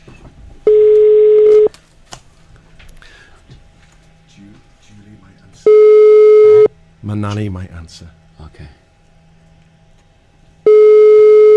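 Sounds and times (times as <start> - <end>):
telephone tone from a call dialed through a studio desk: 0.6 - 1.7, 5.7 - 6.7, 10.6 - 11.5
speech: 7.1 - 8.8.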